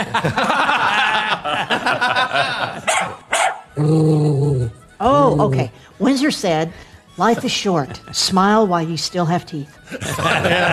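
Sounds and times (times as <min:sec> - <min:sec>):
speech: 0:00.0 - 0:00.6, 0:03.8 - 0:04.6, 0:05.3 - 0:10.7
laughter: 0:00.0 - 0:03.2, 0:09.8 - 0:10.7
resting dog growling and barking: 0:02.9 - 0:04.7.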